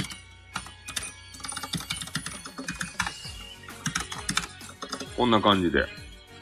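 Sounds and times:
typing on a mechanical gaming keyboard: 0.0s - 5.2s
speech: 5.2s - 6.0s.

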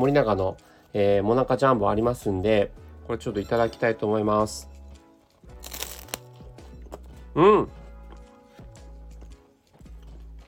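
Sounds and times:
speech: 0.0s - 4.7s, 7.4s - 7.8s
crisp crunchy bites into a toasted ice cream wafer: 5.5s - 6.4s.

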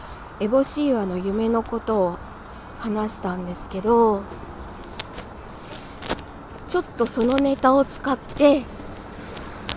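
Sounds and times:
steady low rumble of car noise: 0.0s - 9.7s
speech: 0.4s - 4.4s, 6.7s - 8.8s
brief clicks and rattles in a car: 4.6s - 9.7s.

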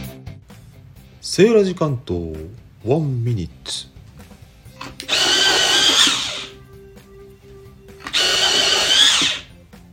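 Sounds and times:
speech: 1.3s - 3.9s
USB electric pencil sharpener grinding a pencil: 4.8s - 6.6s, 8.0s - 9.5s.

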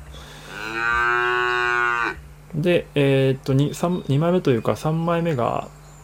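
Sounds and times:
person imitating a cow moo: 0.4s - 2.2s
speech: 0.7s - 1.0s, 2.6s - 5.8s.

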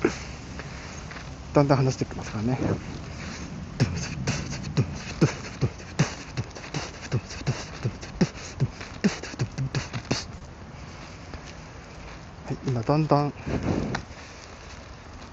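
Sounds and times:
speech: 1.6s - 3.1s, 12.9s - 13.7s
person beatboxing in front of a smartphone: 3.3s - 10.4s
laughter: 3.8s - 10.3s.

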